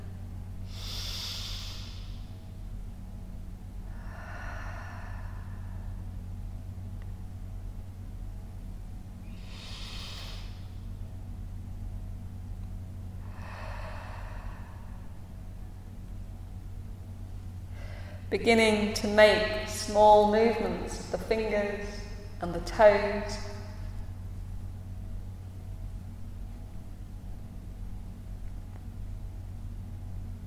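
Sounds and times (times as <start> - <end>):
steady low hum: 0.0 - 30.4
slow deep breathing during a guided relaxation exercise: 0.6 - 2.4, 3.8 - 6.3, 9.3 - 10.9, 13.2 - 15.7, 17.6 - 18.3
speech: 18.3 - 23.5.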